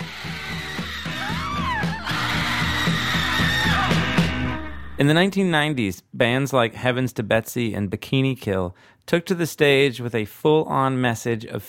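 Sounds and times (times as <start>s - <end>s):
driving rock music with a steady pounding beat: 0.0s - 4.7s
loud continuous vocal scream over pop song: 0.0s - 5.0s
speech: 5.0s - 11.6s.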